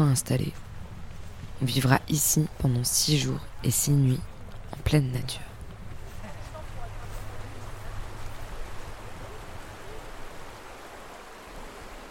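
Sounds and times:
speech: 0.0 - 0.7, 1.6 - 5.5
glacial meltwater river flowing: 0.0 - 12.0.

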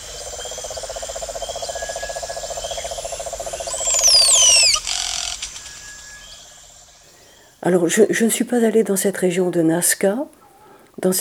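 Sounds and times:
steady pulsing calls in Amazon rainforest in Peru: 0.0 - 7.6
high insect buzzing in Amazon rainforest in Peru: 0.3 - 7.3
bright bird whistling quick descending notes: 3.6 - 7.0
speech: 7.6 - 10.4, 11.0 - 11.2.

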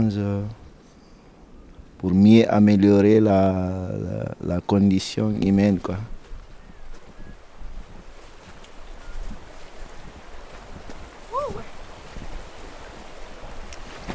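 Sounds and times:
speech: 0.0 - 0.6, 2.0 - 6.2
gusts of wind buffeting the microphone: 0.0 - 14.1
flowing river water rushing: 7.4 - 14.1.

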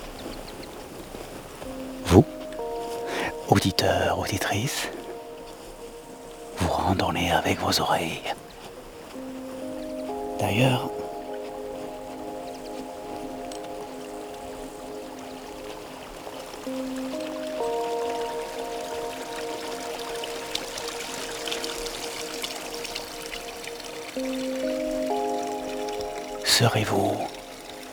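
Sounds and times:
water lapping gently: 0.0 - 27.9
speech: 2.2 - 2.4, 3.5 - 5.0, 6.9 - 8.5, 10.4 - 11.0, 26.6 - 27.3.

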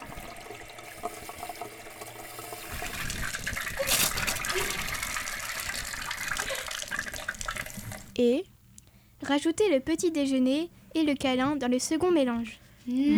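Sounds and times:
water gushing from a hot shower: 0.0 - 8.1
speech: 8.2 - 8.5, 9.3 - 13.1.

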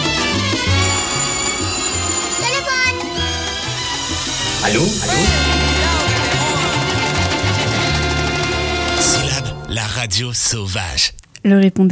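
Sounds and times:
busy music-like background: 0.0 - 10.5
telephone ringing with bright electronic tones: 0.4 - 9.5
speech: 10.0 - 11.8.

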